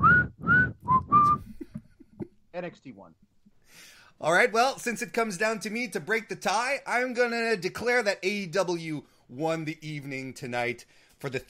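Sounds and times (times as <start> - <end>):
person whistling a tune: 0.0 - 1.7
speech: 2.6 - 11.4.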